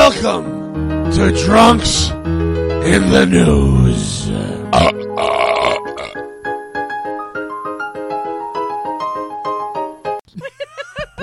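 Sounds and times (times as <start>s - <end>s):
speech: 0.2s - 5.4s
forced fake burp: 4.7s - 6.2s
laughter: 10.3s - 11.2s.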